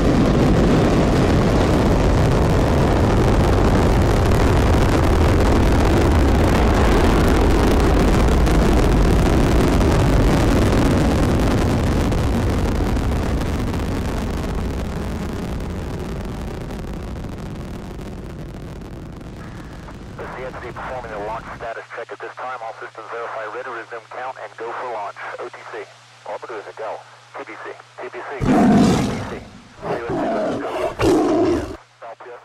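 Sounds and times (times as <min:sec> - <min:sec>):
rocket launch engine roar: 0:00.0 - 0:16.6, 0:18.4 - 0:21.7, 0:27.4 - 0:31.8.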